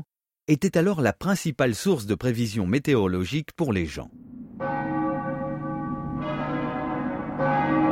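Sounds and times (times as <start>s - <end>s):
speech: 0.5s - 4.2s
church bells ringing: 4.2s - 7.9s.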